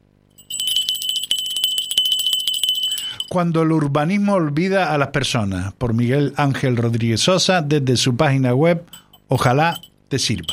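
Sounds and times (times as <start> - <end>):
small metallic bell ringing rapidly: 0.3 - 3.3, 8.9 - 10.5
speech: 3.3 - 10.5.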